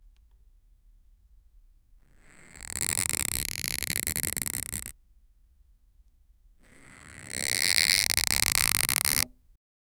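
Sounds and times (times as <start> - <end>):
string being pulled tight: 2.1 - 4.9, 6.6 - 9.4.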